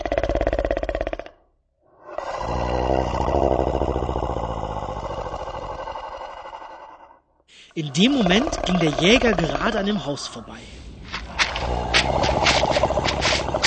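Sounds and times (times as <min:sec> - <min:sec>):
voice imitating a wolf snoring: 0:00.0 - 0:01.3, 0:02.1 - 0:07.1, 0:08.0 - 0:09.8, 0:11.4 - 0:13.6
speech: 0:07.8 - 0:10.8.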